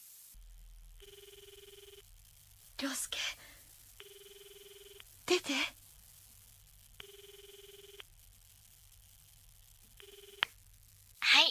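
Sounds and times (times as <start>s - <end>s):
telephone ringing: 1.0s - 2.0s, 4.0s - 5.5s, 7.0s - 8.1s, 10.0s - 10.4s
speech: 5.4s - 5.8s.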